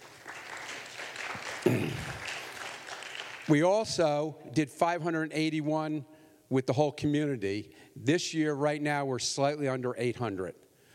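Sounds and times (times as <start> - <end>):
church audience applauding: 0.0 - 3.7
speech: 3.5 - 10.6.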